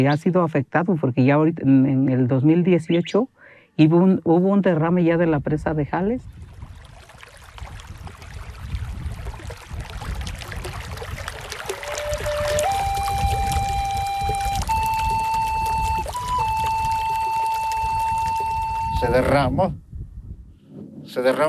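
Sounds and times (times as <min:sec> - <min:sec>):
speech: 0:00.0 - 0:06.4, 0:19.0 - 0:19.8, 0:21.1 - 0:21.4
river water rushing down from Magdalena Ocotlán: 0:09.4 - 0:18.8
sustained whistling tone: 0:11.7 - 0:19.4.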